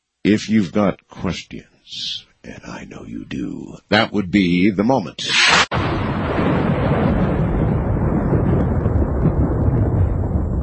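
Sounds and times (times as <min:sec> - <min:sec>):
speech: 0:00.3 - 0:06.6
deep rolling thunder: 0:05.7 - 0:10.6.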